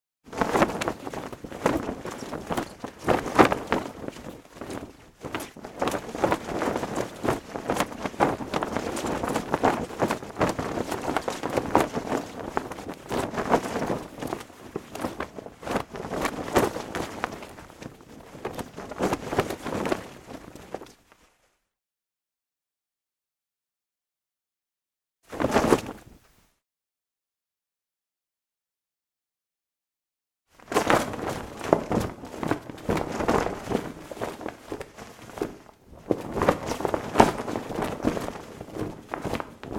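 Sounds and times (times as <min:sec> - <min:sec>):
flag flapping hard in the wind: 0:00.2 - 0:21.5, 0:25.3 - 0:26.4, 0:30.5 - 0:39.7.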